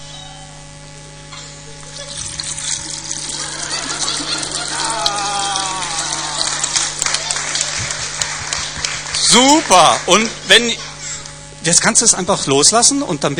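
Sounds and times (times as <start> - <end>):
laughter: 1.9 - 10.3
water flowing through a siphon tube: 2.0 - 5.8
speech: 9.3 - 10.9, 11.6 - 13.3.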